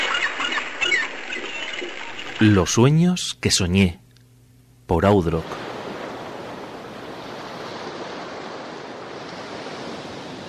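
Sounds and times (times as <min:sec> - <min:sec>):
speech: 0:02.4 - 0:04.0, 0:04.9 - 0:05.6
waves crashing: 0:05.2 - 0:10.4.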